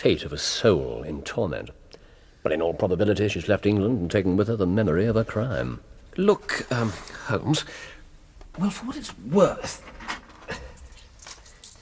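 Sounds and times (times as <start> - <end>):
speech: 0.0 - 1.8, 2.4 - 7.9, 8.6 - 9.9
old metal coins jingling in hand: 10.5 - 11.7.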